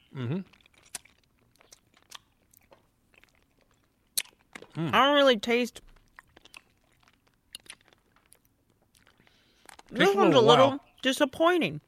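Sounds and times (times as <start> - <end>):
biting and crunching pickle-flavored hard candy: 0.0 - 5.0, 5.7 - 10.0
short hummed voice sound: 0.1 - 0.4
speech: 0.2 - 0.6, 4.8 - 5.9, 10.3 - 11.8.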